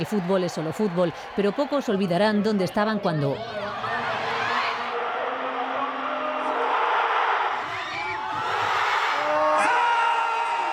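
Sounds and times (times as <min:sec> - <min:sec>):
speech: 0:00.0 - 0:03.6
Spanish football fans shouting and cheering during a Spain versus France match: 0:00.0 - 0:10.7.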